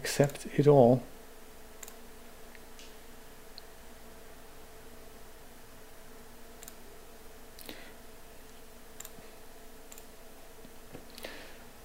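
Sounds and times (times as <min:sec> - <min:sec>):
steady low electrical hum: 0:00.0 - 0:11.8
speech: 0:00.2 - 0:01.1
computer mouse clicks while installing a media player: 0:01.8 - 0:02.0, 0:06.6 - 0:06.8, 0:09.0 - 0:09.2, 0:09.9 - 0:10.1.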